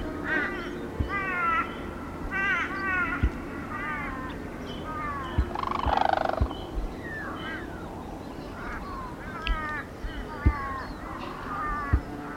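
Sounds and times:
Sarus crane calls with harsh harmonic notes and a rasping cry: 0:00.0 - 0:12.3
steady low background noise: 0:00.0 - 0:12.3.

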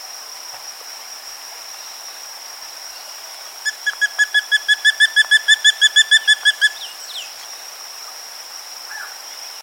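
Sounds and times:
spot-breasted woodpecker calling: 0:03.7 - 0:07.2.

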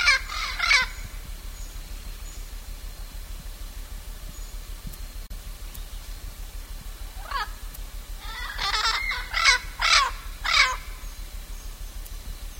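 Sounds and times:
blue-fronted amazon squawking: 0:00.0 - 0:01.0, 0:07.2 - 0:07.5, 0:08.2 - 0:10.9.

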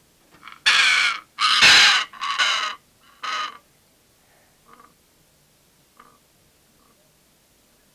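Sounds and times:
Pesquet's parrot harsh rasping screeches: 0:00.5 - 0:03.6.

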